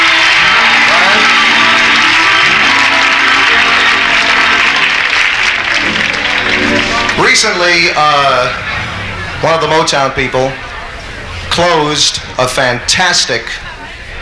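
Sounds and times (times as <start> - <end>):
scattered cheers: 0.0 - 7.3
large audience applauding: 0.0 - 7.8
speech: 7.4 - 8.6, 9.4 - 10.6, 11.6 - 13.6.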